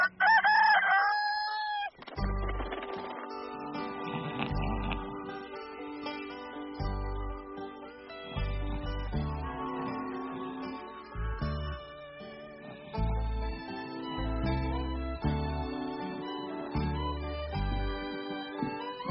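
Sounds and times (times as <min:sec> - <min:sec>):
rooster crowing: 0:00.0 - 0:02.0
upbeat music with a heavy bass beat: 0:02.2 - 0:11.9, 0:13.0 - 0:15.9, 0:16.7 - 0:19.1.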